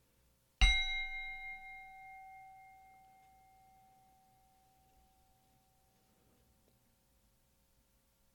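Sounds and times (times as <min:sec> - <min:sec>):
meditation bell struck to begin a guided meditation: 0:00.6 - 0:06.0.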